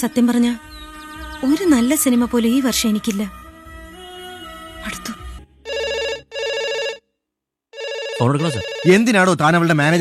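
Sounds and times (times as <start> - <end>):
speech: 0.0 - 0.7, 1.4 - 3.4, 8.2 - 9.9
electronic telephone ringtone: 5.7 - 7.0, 7.7 - 9.9.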